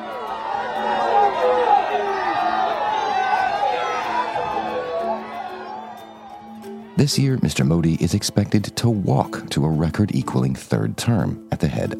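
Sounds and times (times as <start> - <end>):
scattered whoops from the crowd: 0.0 - 7.0
large crowd of supporters cheering and shouting in Gujarat India: 0.0 - 7.8
speech: 7.0 - 11.9.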